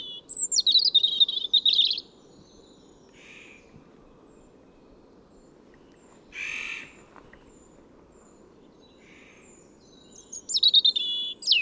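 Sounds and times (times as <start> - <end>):
European robin Erithacus rubecula thin high whistle and tinkling warble: 0.0 - 2.0, 10.2 - 11.6.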